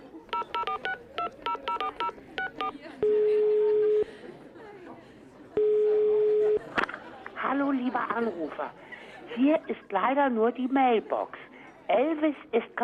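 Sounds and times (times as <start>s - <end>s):
laughter: 0.0s - 11.6s
faint chatter: 0.0s - 12.8s
touch-tone telephone dialing beeps: 0.3s - 4.0s, 5.6s - 6.6s
speech: 8.2s - 12.8s.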